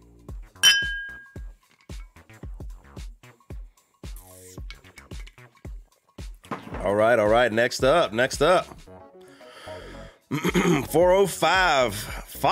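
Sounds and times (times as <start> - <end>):
glasses clinking in a toast: 0.6 - 1.5
speech: 6.8 - 8.8, 10.3 - 12.5.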